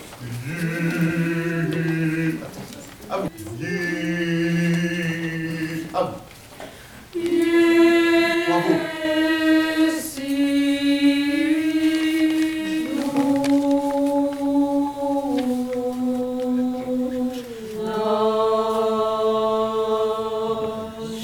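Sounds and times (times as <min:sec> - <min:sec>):
mezzo choir singing a chorale: 0:00.2 - 0:06.3, 0:07.1 - 0:21.2.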